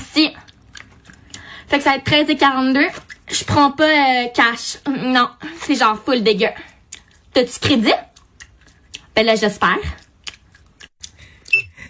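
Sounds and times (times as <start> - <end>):
woman chewing gum: 0.0 - 1.8, 2.8 - 3.4, 6.4 - 11.8
speech: 0.2 - 0.4, 1.7 - 6.7, 7.4 - 8.1, 9.2 - 10.0
mouth smacking and clicking: 0.4 - 1.6, 2.9 - 3.3, 6.6 - 9.2, 9.9 - 11.8.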